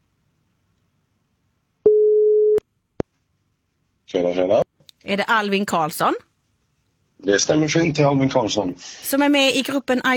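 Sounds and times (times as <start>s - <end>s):
telephone ringback tone of an outgoing call: 1.9s - 2.6s
speech: 4.1s - 6.3s, 7.2s - 10.1s.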